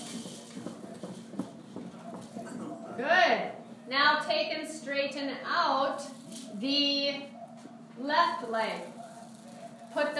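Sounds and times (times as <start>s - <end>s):
feet stomping on a floor during a hoop exercise: 0.0s - 2.8s
speech: 3.0s - 7.3s, 8.0s - 8.9s, 10.0s - 10.1s.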